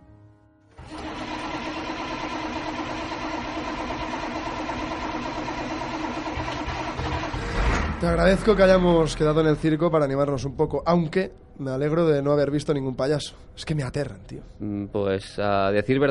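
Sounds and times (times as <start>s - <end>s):
large bus engine starting and idling: 0.8s - 8.3s
speech: 8.0s - 16.0s.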